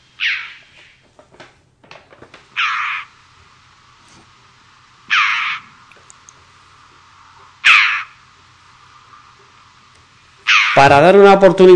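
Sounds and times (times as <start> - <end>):
jackdaw calling: 0.0 - 1.1, 2.5 - 3.8, 4.9 - 11.4
speech: 10.8 - 11.7.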